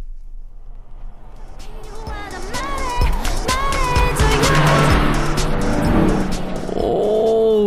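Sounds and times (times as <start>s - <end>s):
loud car roaring past on the road: 0.4s - 7.1s
music blaring from inside the car: 1.6s - 7.6s.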